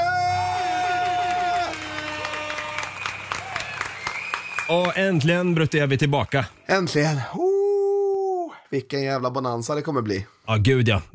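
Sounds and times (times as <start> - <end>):
crowd applause and cheering: 0.0 - 6.6
speech: 4.7 - 7.6, 8.7 - 11.1.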